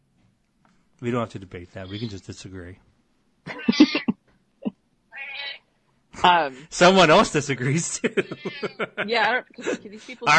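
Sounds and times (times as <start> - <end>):
speech: 1.0 - 2.9, 6.2 - 10.3
laughter: 3.5 - 4.1, 7.1 - 10.3
cat meowing loudly and insistently: 5.2 - 5.6.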